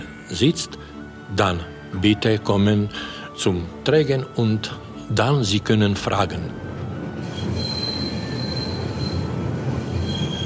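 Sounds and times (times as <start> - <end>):
speech: 0.3 - 6.6
fast modern train running on rails from Poprad to Stari Smokovets: 5.4 - 10.4
thin high train wheel squeals: 7.2 - 10.4.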